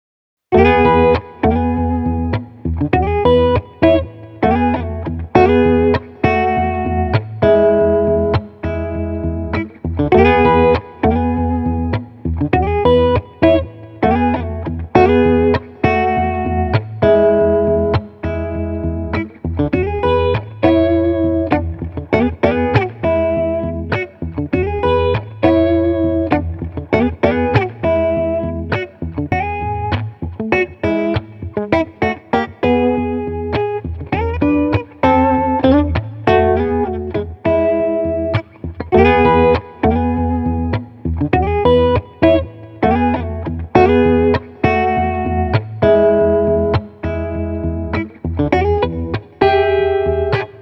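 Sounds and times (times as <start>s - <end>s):
chill electric guitar playing: 0.5s - 50.6s.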